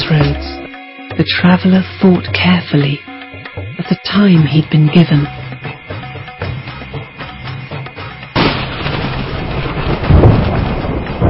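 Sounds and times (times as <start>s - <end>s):
speech: 1.2s - 3.1s, 3.8s - 5.4s
loud crack of thunder rolling into deep rumble: 8.3s - 11.2s
steady rain pattering softly: 8.3s - 11.2s.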